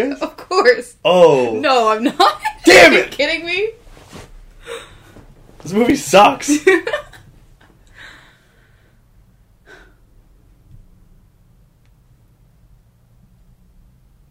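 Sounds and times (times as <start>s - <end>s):
speech: 0.0s - 3.8s, 5.6s - 7.1s
low steady hum: 0.0s - 14.2s
quiet breathing: 4.6s - 5.3s, 7.8s - 10.4s.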